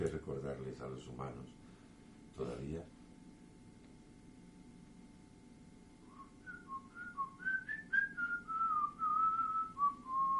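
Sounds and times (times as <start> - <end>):
speech: 0.0 - 1.7, 2.3 - 3.0
person whistling a wavering melodic tune: 6.1 - 10.3.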